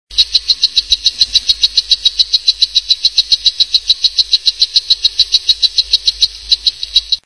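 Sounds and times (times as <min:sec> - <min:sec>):
Oophaga pumilio frog calling: 0:00.1 - 0:07.2.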